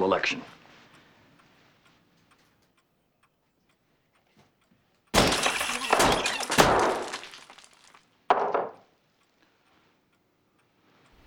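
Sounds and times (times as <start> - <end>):
speech: 0.1 - 0.6
cracking, rattling debris of a smashed dictaphone: 5.2 - 8.8
gavel smashing a dictaphone: 5.2 - 8.8.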